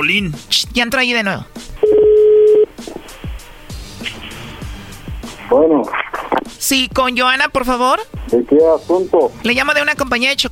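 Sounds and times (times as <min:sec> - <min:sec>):
speech: 0:00.0 - 0:02.0, 0:05.5 - 0:06.0, 0:06.6 - 0:10.5
telephone tone as a number is dialed: 0:01.8 - 0:02.7.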